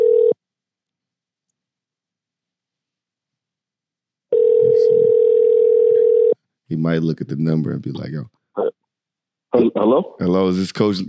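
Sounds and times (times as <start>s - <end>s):
outgoing phone call ringing tone: 0.0s - 0.4s, 4.3s - 6.4s
speech: 6.8s - 8.4s, 9.7s - 11.0s.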